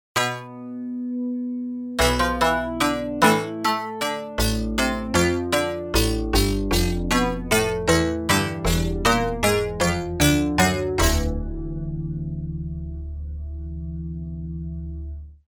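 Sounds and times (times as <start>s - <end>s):
pluck pad: 0.2s - 1.3s, 2.0s - 12.6s.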